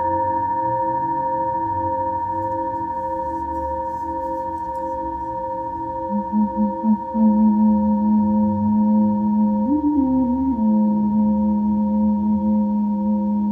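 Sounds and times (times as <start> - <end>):
singing bowl ringing with sustained layered tones: 0.0 - 13.5
wobbling pulse of singing bowl being rubbed: 2.7 - 13.5.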